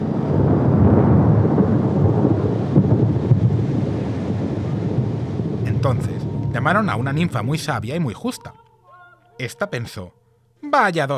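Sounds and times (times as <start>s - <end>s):
deep continuous thunder rumbling: 0.0s - 8.3s
rain hiss: 0.0s - 8.5s
speech: 6.0s - 8.6s, 9.4s - 11.1s.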